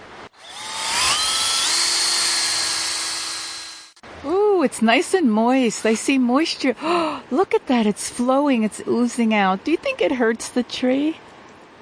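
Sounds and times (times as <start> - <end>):
power drill boring a tap hole into a tree: 0.4 - 4.0
speech: 4.2 - 11.3.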